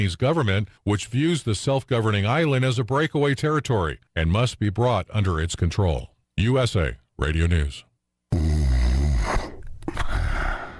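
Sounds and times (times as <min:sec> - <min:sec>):
speech: 0:00.0 - 0:08.5
man snoring: 0:08.3 - 0:10.7.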